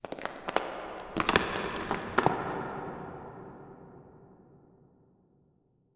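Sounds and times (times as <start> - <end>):
rocks: 0.0 - 2.7.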